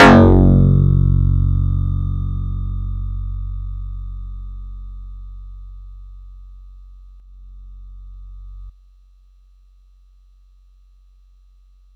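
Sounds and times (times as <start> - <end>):
Yamaha YX81Z electric bass note F sharp 2: 0.0 - 4.8.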